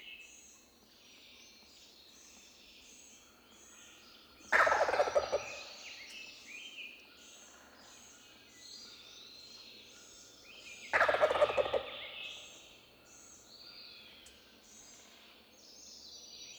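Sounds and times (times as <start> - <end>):
small birds singing high repeated phrases: 0.0 - 16.5
wild turkey gobbling: 4.6 - 5.4, 11.0 - 11.9.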